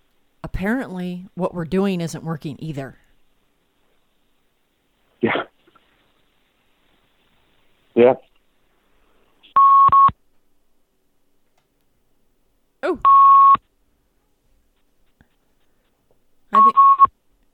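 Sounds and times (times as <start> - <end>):
speech: 0.6 - 3.0, 8.0 - 8.3
phone on-hold short electronic beeps: 9.6 - 10.1, 13.0 - 13.6, 16.6 - 17.1.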